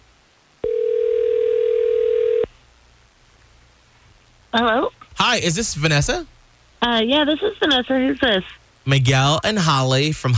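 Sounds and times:
telephone ringback tone on an outgoing call: 0.6 - 2.5
speech: 4.5 - 10.3.

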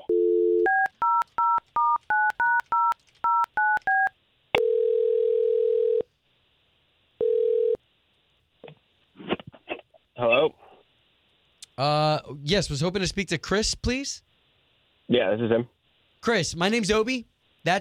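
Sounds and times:
touch-tone telephone keypad dialing a number: 0.1 - 4.7
telephone ringing tones: 0.1 - 6.1, 7.2 - 7.8
speech: 11.8 - 14.3, 15.1 - 17.7.

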